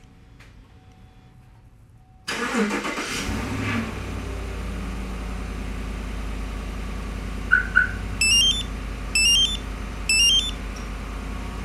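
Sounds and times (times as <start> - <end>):
car engine remote starting and idling: 2.2 - 11.6
quick alarm chirps: 7.5 - 10.6
short high electronic alarm beeps: 7.5 - 10.6.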